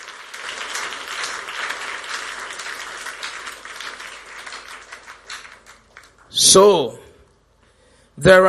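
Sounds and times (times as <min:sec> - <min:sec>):
audience clapping: 0:00.0 - 0:06.4
speech: 0:06.4 - 0:07.0, 0:08.2 - 0:08.4.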